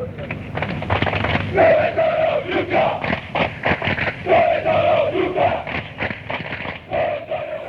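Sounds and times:
football ultras chanting in unison at rival supporters: 1.3s - 6.0s, 6.8s - 7.6s.

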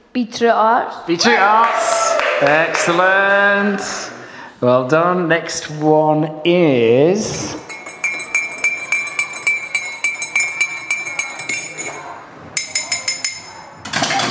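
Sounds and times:
speech: 0.2s - 7.6s
teaspoon stirring in a cup: 7.3s - 14.2s.

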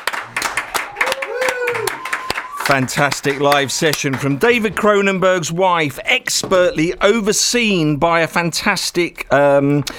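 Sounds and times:
studio crew clapping: 0.0s - 4.6s
people whooping and cheering: 0.7s - 2.8s
speech: 2.7s - 9.9s.

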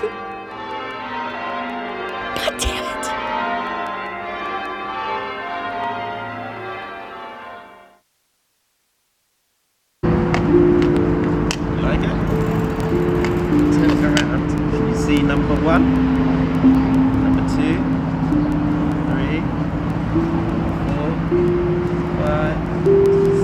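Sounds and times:
speech: 0.0s - 0.3s
bells ringing in a dense peal: 0.0s - 7.8s, 10.0s - 23.4s
voice exclaiming: 2.4s - 3.2s.

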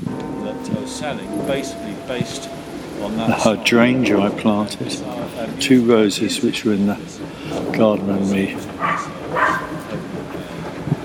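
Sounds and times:
speech: 0.7s - 9.2s
neighbour's dog barking next door beside a garden: 8.8s - 9.8s.

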